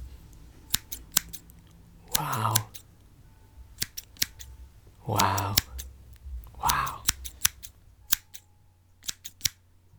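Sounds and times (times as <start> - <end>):
scissors snipping through hair: 0.6 - 2.9, 3.8 - 5.9, 6.6 - 8.4, 9.0 - 9.6
speech: 5.1 - 5.7.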